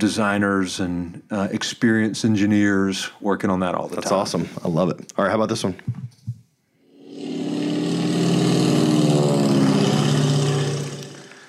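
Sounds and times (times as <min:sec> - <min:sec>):
speech: 0:00.0 - 0:06.0
open cockpit propeller airplane engine droning: 0:07.0 - 0:11.4.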